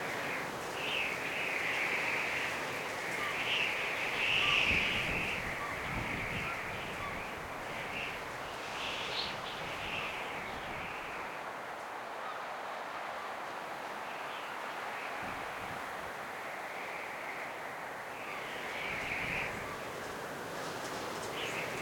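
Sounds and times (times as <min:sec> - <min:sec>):
coastal wind: 0:00.0 - 0:21.8.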